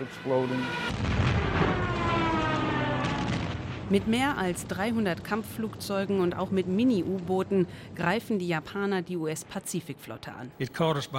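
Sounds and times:
speech: 0:00.0 - 0:02.4, 0:03.9 - 0:11.1
explosions of falling bombs and torpedoes blowing up ships at Pearl Harbor: 0:00.9 - 0:08.0.

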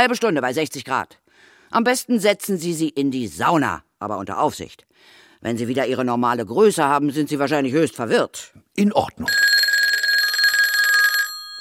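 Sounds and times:
speech: 0:00.0 - 0:09.5
telephone ringing with a trilling electronic bell: 0:09.3 - 0:11.5.

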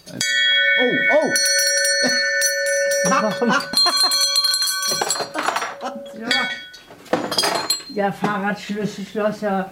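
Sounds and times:
speech: 0:00.1 - 0:02.3, 0:03.0 - 0:05.1, 0:08.0 - 0:09.7
bell ringing: 0:00.2 - 0:08.0.

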